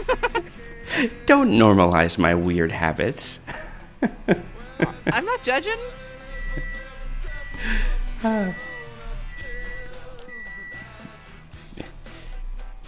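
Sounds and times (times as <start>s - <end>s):
laughter: 0.0s - 1.2s, 3.4s - 5.4s
speech: 0.1s - 6.0s, 7.6s - 8.7s
microwave beeping short electronic tones: 5.6s - 11.2s.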